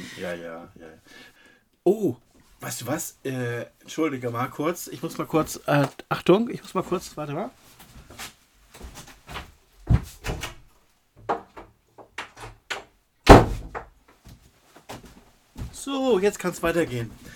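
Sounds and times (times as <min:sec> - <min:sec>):
speech: 0:00.1 - 0:08.3, 0:16.1 - 0:17.3
door opening and closing with knocks rattles and clicks: 0:09.9 - 0:10.7
heavier thuds: 0:13.3 - 0:13.9.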